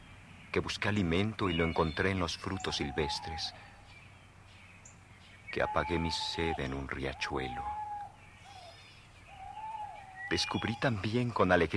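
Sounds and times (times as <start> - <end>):
birds calling with thin whistled notes: 0.0 - 11.7
speech: 0.5 - 3.7, 5.5 - 7.8, 10.3 - 11.7.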